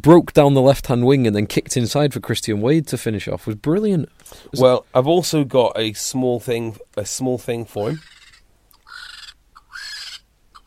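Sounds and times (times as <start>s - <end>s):
speech: 0.0s - 8.2s
vulture screeching: 7.8s - 10.6s.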